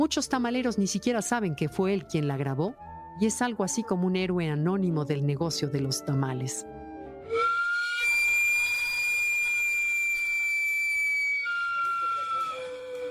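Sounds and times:
speech: 0.0s - 7.4s
sweet potato vendor cart steam whistle shrieking: 7.3s - 13.0s.

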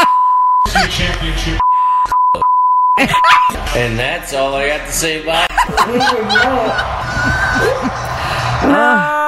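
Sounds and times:
censor bleep tone: 0.0s - 0.7s, 1.6s - 3.5s
laughter: 0.6s - 1.2s, 3.0s - 3.8s, 5.3s - 9.1s
speech: 3.0s - 9.0s.

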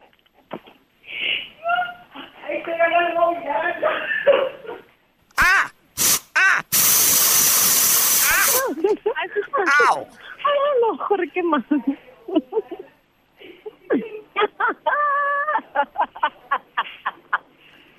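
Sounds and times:
speech: 2.7s - 4.1s, 8.9s - 12.9s
laughter: 3.8s - 5.7s, 6.4s - 6.7s, 12.3s - 17.5s
person making voiced sounds: 5.3s - 6.9s, 8.1s - 8.9s, 9.5s - 10.2s
aerosol insecticide can spraying: 6.0s - 8.8s.

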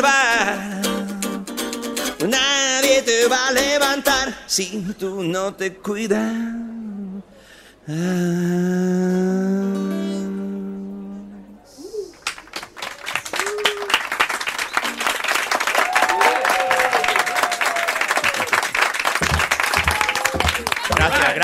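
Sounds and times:
music passage: 0.3s - 4.2s
speech: 3.0s - 6.7s, 7.9s - 9.9s
audience applause: 12.2s - 21.4s
scattered cheers: 12.8s - 18.8s, 19.5s - 21.4s.

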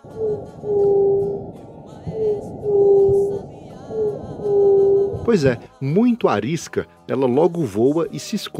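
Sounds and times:
juriti dove Leptotila cooing: 0.0s - 5.3s
speech: 0.2s - 1.0s, 5.3s - 8.5s.

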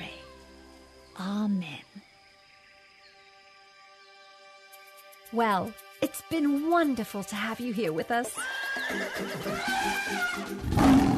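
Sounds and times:
speech: 1.2s - 1.8s, 5.3s - 11.0s
horse neighing: 8.4s - 11.1s.

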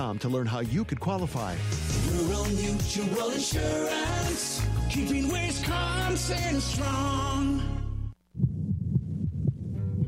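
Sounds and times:
speech: 0.0s - 7.8s
baby's heartbeat recording: 8.3s - 10.0s.

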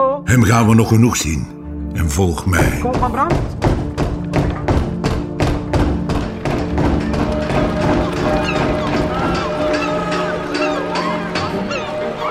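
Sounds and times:
speech: 0.3s - 3.7s
heavy banging on the wooden door of an office: 2.6s - 12.2s.

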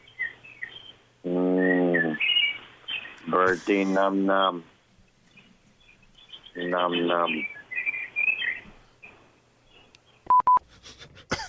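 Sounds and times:
birds chirping in background of phone call: 0.0s - 10.5s
speech: 3.3s - 4.7s, 6.7s - 7.6s
telephone keypad beeps: 10.3s - 10.6s.

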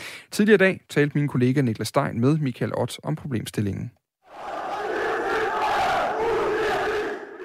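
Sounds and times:
speech: 0.4s - 4.5s
large crowd of football fans chanting in protest: 4.3s - 7.4s.

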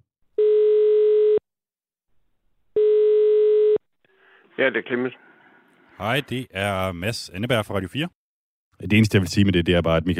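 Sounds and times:
telephone ringing tone on an outgoing call: 0.4s - 1.4s, 2.8s - 3.8s
speech: 4.6s - 5.3s, 6.0s - 8.2s, 8.8s - 10.1s.

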